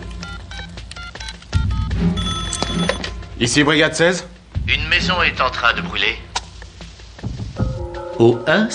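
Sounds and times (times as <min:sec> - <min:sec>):
telephone being dialed: 0:00.2 - 0:03.1
telephone keypress clicks: 0:00.9 - 0:01.6
speech: 0:03.4 - 0:06.3, 0:08.2 - 0:08.7.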